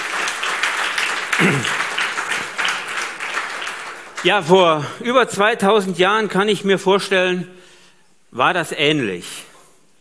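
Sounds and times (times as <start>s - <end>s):
audience applause: 0.0s - 4.9s
speech: 1.4s - 1.8s, 4.2s - 7.6s, 8.3s - 9.4s.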